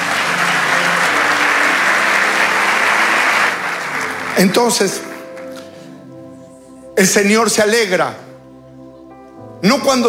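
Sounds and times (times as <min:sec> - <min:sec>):
audience applause: 0:00.0 - 0:07.2
speech: 0:04.4 - 0:05.1, 0:07.0 - 0:08.3, 0:09.6 - 0:10.0.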